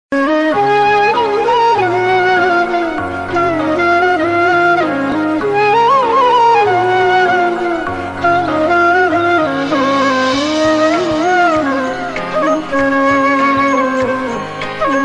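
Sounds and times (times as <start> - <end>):
flute ringtone: 0.2 - 15.0.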